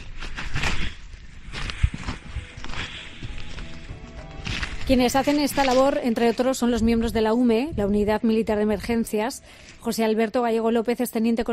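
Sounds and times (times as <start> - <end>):
footsteps crunching over cooled volcanic lava: 0.0 - 8.1
speech: 4.9 - 11.5.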